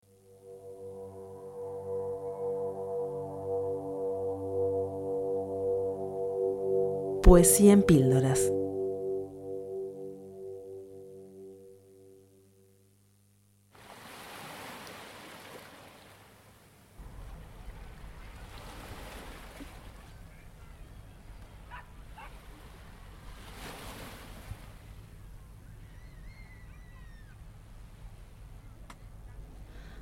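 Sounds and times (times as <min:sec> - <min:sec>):
short tonal musical intro: 0:00.0 - 0:12.6
speech: 0:07.3 - 0:08.6
ocean waves: 0:13.8 - 0:25.6.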